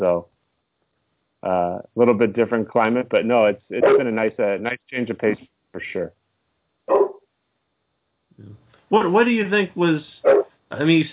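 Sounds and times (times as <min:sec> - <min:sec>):
speech: 0:00.0 - 0:00.3, 0:01.4 - 0:06.2, 0:06.9 - 0:07.1, 0:08.4 - 0:11.1
dog barking: 0:03.8 - 0:04.1, 0:06.9 - 0:07.2, 0:10.2 - 0:10.5.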